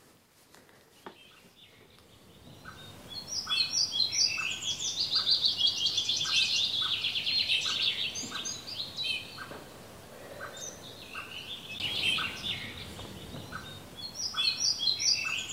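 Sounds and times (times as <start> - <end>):
high-pitched songbird chatter: 0.8 - 15.5
white-backed woodpecker pjupp-pjupp call notes: 1.2 - 9.6, 10.2 - 15.5.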